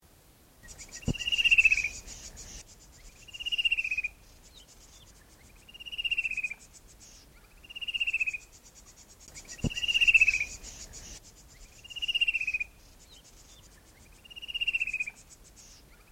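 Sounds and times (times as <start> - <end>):
fan-tailed cuckoo call: 0.6 - 6.6, 9.3 - 16.1.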